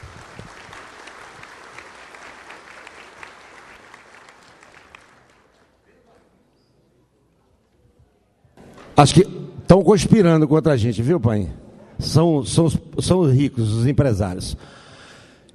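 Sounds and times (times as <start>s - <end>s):
crowd applauding: 0.0s - 6.2s
speech: 9.0s - 14.8s.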